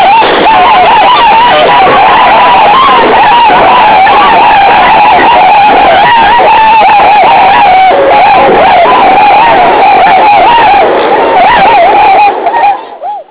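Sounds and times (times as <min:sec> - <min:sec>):
flock of birds calling: 0:00.0 - 0:13.2.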